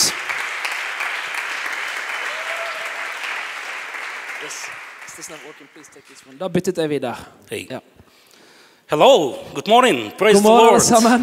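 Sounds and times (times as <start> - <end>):
crowd applauding: 0.0 - 6.4
speech: 4.4 - 8.0, 8.9 - 11.2.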